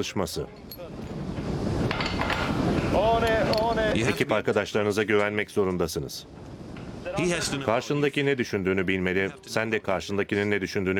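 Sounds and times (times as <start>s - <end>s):
speech: 0.0s - 0.8s, 2.7s - 6.5s, 7.1s - 10.9s
strong wind roaring at a tower construction site: 1.0s - 4.0s.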